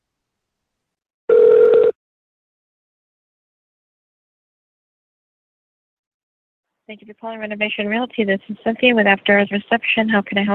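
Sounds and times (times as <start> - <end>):
steady telephone tone while a number is redialed: 1.3 - 2.0
speech: 6.9 - 10.5.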